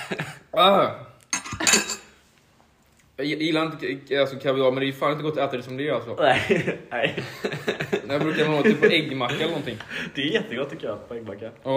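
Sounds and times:
speech: 0.1 - 1.0, 3.2 - 11.7
metal spoon clinking on a plate: 1.3 - 2.2
laughter: 6.2 - 10.4.

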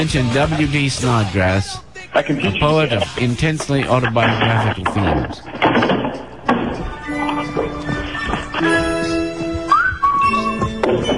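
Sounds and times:
speech: 0.0 - 5.9
knocks and clattering thumps: 3.6 - 8.8
person whistling a tune: 9.5 - 10.7.

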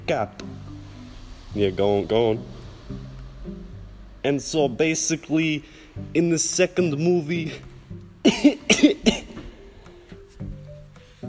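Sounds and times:
speech: 0.1 - 0.5, 1.5 - 3.6, 4.2 - 9.2
person coughing during an interview conversation: 8.2 - 9.4.

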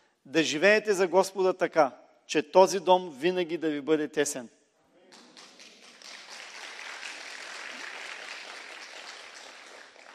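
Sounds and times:
speech: 0.2 - 5.2
church audience applauding at the opening of its new prayer hall: 5.2 - 10.1.

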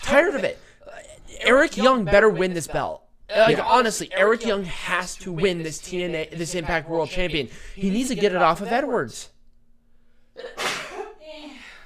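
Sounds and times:
speech: 0.1 - 0.6, 1.5 - 9.3, 10.4 - 10.7
person sneezing: 10.4 - 11.2.

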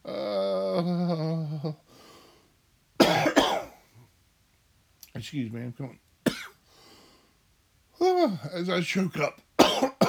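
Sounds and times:
speech: 0.8 - 1.8, 5.2 - 6.4, 8.2 - 10.0
short rough cough: 3.0 - 3.8, 6.3 - 6.6, 9.6 - 10.0.

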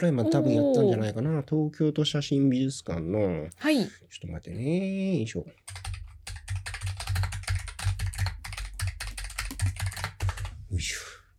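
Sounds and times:
speech: 0.0 - 5.9
computer keyboard typing: 5.7 - 10.6.

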